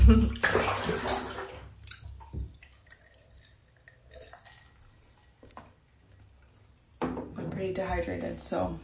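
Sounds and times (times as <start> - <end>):
rush of pouring water: 0.0 - 6.8
soft drips: 0.0 - 7.0
speech: 0.1 - 0.7, 7.7 - 8.8.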